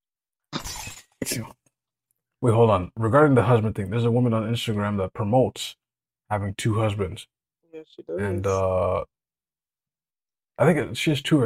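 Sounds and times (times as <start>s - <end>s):
glass shattering: 0.6s - 1.2s
speech: 1.2s - 1.6s, 2.4s - 9.2s, 10.6s - 11.4s.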